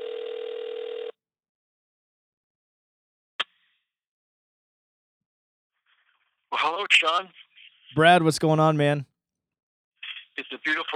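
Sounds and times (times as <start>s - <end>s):
steady buzzy telephone call tone: 0.0s - 1.2s
speech: 6.6s - 9.1s, 10.4s - 10.9s.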